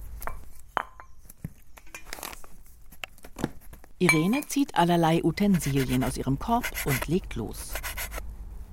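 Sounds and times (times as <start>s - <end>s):
speech: 4.0s - 7.9s
ceramic knife chopping fresh herbs for herb salt: 5.4s - 8.2s.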